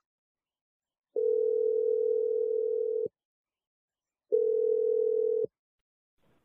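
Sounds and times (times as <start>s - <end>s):
telephone ringing tone: 1.1s - 3.1s, 4.3s - 5.5s.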